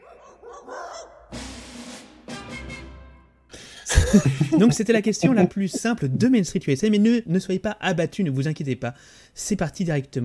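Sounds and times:
small dog barking in short sharp bursts: 0:00.0 - 0:01.2
laughter: 0:03.9 - 0:06.4
recorded music track: 0:03.9 - 0:06.4
speech: 0:04.1 - 0:10.2.

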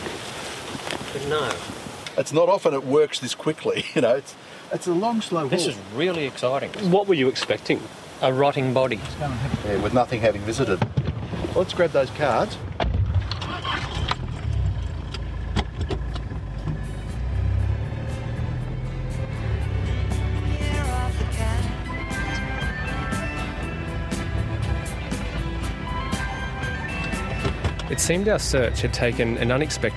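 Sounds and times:
speech: 0:01.2 - 0:10.9, 0:11.6 - 0:12.7, 0:28.0 - 0:29.9
car engine starting and driving off: 0:08.9 - 0:29.9.

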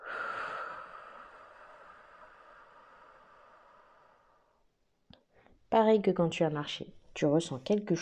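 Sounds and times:
breath blown out onto a hand during a breathing exercise: 0:00.0 - 0:04.6
speech: 0:05.7 - 0:07.9.

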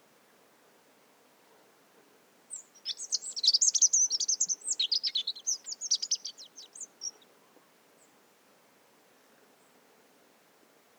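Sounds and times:
rock bunting pre-nuptial song in mixed conifer and oak forest: 0:02.6 - 0:07.2.

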